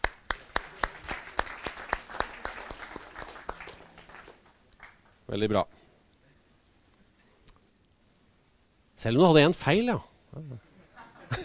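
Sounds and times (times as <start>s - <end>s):
small round of applause from a few people in a room: 0.0s - 5.2s
speech: 5.3s - 5.8s, 9.0s - 10.7s
laughter: 10.8s - 11.4s.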